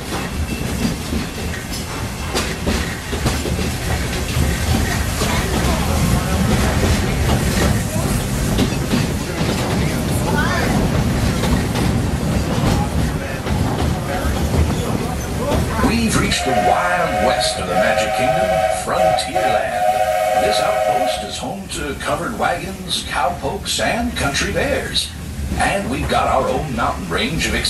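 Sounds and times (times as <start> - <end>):
train rolling on rails: 0.0 - 27.6.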